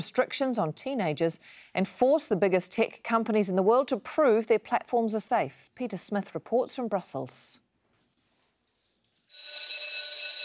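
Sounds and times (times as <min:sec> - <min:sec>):
speech: 0:00.0 - 0:07.6
school bell with a harsh metallic electric ring: 0:09.3 - 0:10.4.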